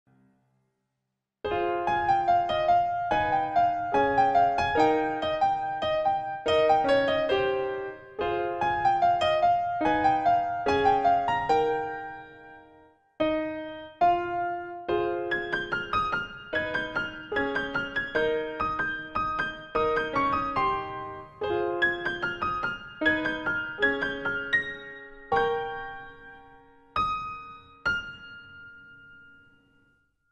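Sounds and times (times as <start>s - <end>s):
keyboard playing piano cover: 1.5s - 29.5s.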